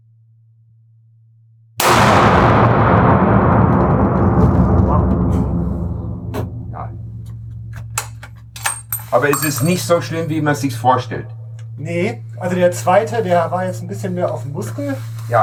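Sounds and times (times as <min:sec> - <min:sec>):
hunting rifle gunshot with long tail: 0:01.8 - 0:08.7
speech: 0:09.2 - 0:15.4.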